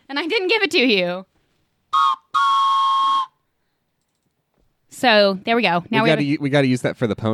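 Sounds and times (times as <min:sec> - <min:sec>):
speech: 0:00.1 - 0:01.3, 0:05.0 - 0:07.3
train whistle with a breathy multi-tone chord: 0:02.0 - 0:03.4.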